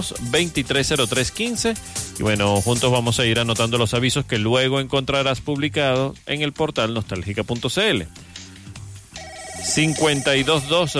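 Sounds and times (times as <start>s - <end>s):
speech: 0.0s - 8.4s, 9.6s - 10.9s
telephone ringing with a steady electronic tone: 9.2s - 10.9s.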